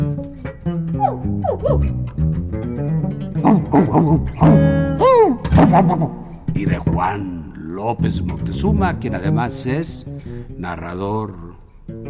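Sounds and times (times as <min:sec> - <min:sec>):
plucked string music: 0:00.0 - 0:12.0
small dog yipping barks: 0:01.0 - 0:02.0
speech: 0:01.5 - 0:02.1, 0:03.4 - 0:04.8, 0:05.6 - 0:11.5.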